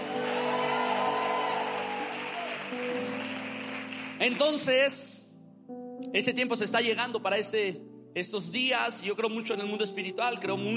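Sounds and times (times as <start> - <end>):
large audience cheering a victory cry and whooping: 0.0 - 3.5
speech: 4.2 - 5.2, 6.1 - 10.7.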